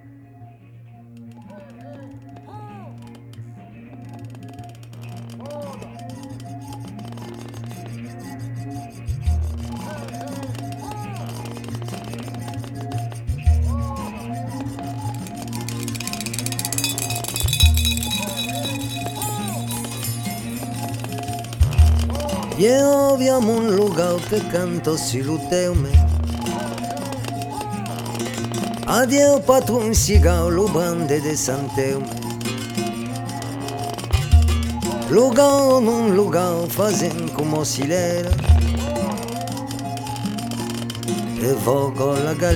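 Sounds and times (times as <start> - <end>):
shaker-like percussion: 4.0 - 42.5
twanging berimbau playing a repeating rhythmic pattern: 9.5 - 41.8
speech: 22.6 - 26.1, 28.9 - 32.2, 35.1 - 38.4, 41.4 - 42.5.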